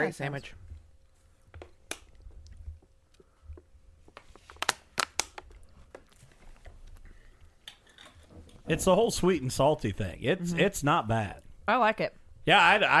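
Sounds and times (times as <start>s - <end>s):
speech: 0.0s - 0.6s, 8.7s - 12.9s
chewing and mouth sounds eating peanut butter, bacon and maple syrup: 1.2s - 8.2s.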